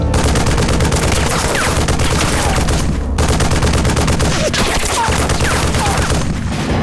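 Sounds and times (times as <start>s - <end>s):
machine-gun fire in long rapid bursts: 0.1s - 6.7s
people shouting: 4.3s - 6.2s.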